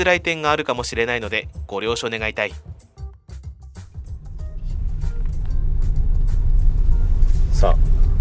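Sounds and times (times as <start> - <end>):
speech: 0.0 - 2.8, 7.6 - 7.9
road and engine rumble inside a moving Daihatsu car: 3.9 - 8.2.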